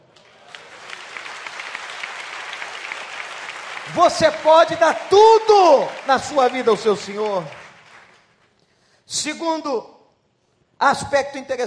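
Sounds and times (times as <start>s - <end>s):
audience applauding: 0.1s - 8.5s
speech: 3.9s - 7.6s, 9.1s - 9.9s, 10.8s - 11.6s.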